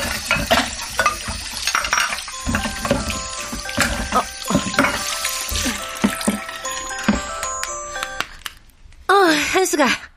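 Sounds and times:
running tap water pouring into a sink: 0.0 - 7.4
dishes clinking and clattering: 0.0 - 7.7
speech: 9.8 - 10.0.

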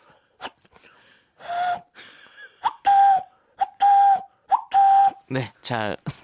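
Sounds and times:
person imitating a cuckoo call with voiced whistling hoots: 2.6 - 5.2
speech: 5.3 - 6.2.

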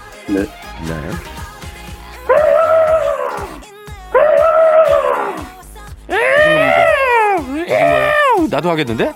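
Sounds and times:
speech: 0.3 - 1.4, 8.5 - 9.1
African elephant calls: 2.3 - 8.5.

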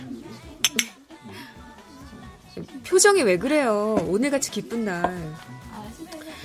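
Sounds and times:
glasses clinking in a toast: 0.6 - 1.0
speech: 2.6 - 5.7.

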